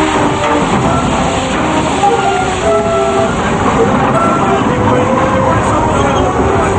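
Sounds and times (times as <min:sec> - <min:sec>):
steam train pulling away, hissing and rumbling: 0:00.0 - 0:06.7
voices: 0:00.0 - 0:06.7.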